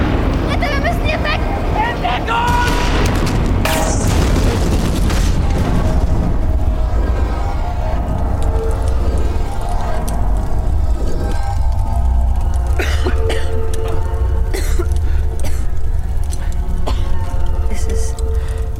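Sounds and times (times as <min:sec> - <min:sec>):
explosion of shot oxygen cylinders: 0:00.0 - 0:12.8
sharp bright crackle: 0:02.5 - 0:18.7.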